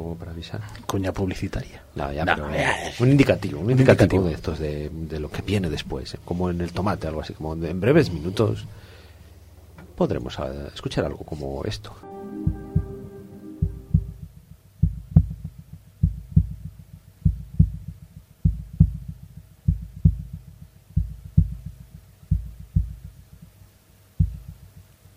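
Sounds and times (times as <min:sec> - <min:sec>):
speech: 0:00.1 - 0:08.9, 0:10.0 - 0:12.6
sustained tonal chord: 0:12.0 - 0:14.3
heartbeat sound effect in a radio promo: 0:14.8 - 0:23.2, 0:24.2 - 0:24.7.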